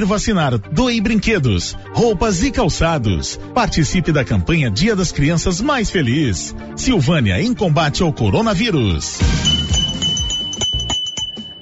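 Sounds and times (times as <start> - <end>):
speech: 0.0 - 9.7
short shop jingle with bright bell tone and low musical backing: 9.2 - 11.6.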